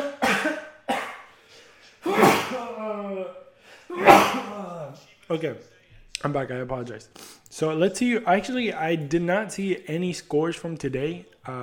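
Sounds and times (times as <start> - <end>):
person sneezing: 0.0 - 1.3, 2.0 - 2.9, 3.9 - 4.7
speech: 5.3 - 11.6.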